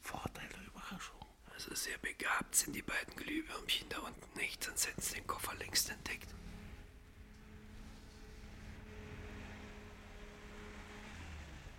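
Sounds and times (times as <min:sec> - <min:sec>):
speech: 0:00.9 - 0:06.4
car engine drone: 0:05.0 - 0:11.7.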